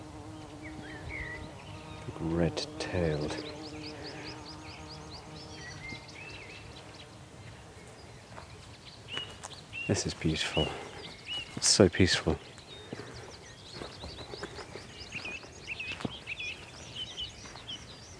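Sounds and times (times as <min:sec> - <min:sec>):
bee buzzing: 0:00.0 - 0:07.7
tree pipit singing in a field: 0:00.0 - 0:18.1
speech: 0:02.2 - 0:03.6, 0:09.9 - 0:10.9, 0:11.6 - 0:13.0
footsteps crunching: 0:07.4 - 0:18.0.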